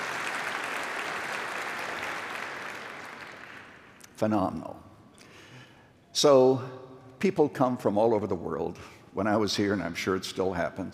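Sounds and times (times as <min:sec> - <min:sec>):
large audience clapping in a church sanctuary: 0:00.0 - 0:04.2
speech: 0:04.2 - 0:04.9, 0:06.2 - 0:10.9.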